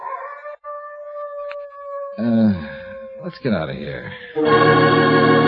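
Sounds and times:
dog howling in a long mournful tone: 0:00.0 - 0:03.4
speech: 0:02.2 - 0:05.3.

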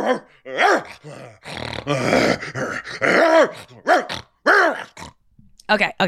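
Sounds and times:
speech: 0:00.0 - 0:03.9, 0:05.7 - 0:06.0
dog growling and barking: 0:00.0 - 0:05.2.

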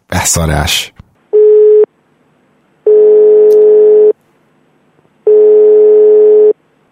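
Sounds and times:
speech: 0:00.2 - 0:01.0
telephone line tones while placing a call to a Serbian phone number: 0:01.4 - 0:01.9, 0:02.9 - 0:04.2, 0:05.3 - 0:06.6.

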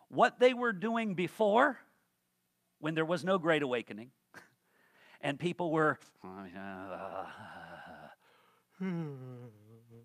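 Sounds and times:
speech: 0:00.1 - 0:01.9, 0:02.8 - 0:04.2, 0:05.2 - 0:08.2, 0:08.8 - 0:10.0
loud drawn-out yawn with a wavering voiced groan: 0:06.4 - 0:10.0.

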